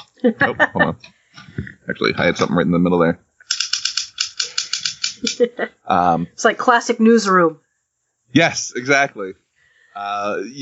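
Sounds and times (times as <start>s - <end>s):
laughter: 0.0s - 3.1s, 5.2s - 6.3s, 8.4s - 9.3s, 10.0s - 10.5s
faint murmur of voice: 0.0s - 3.2s, 5.9s - 6.3s, 8.4s - 9.3s, 10.0s - 10.5s
speech: 0.2s - 3.2s, 5.2s - 7.6s, 8.3s - 9.4s, 10.0s - 10.5s
manual typewriter keystrokes clacking: 3.5s - 5.5s.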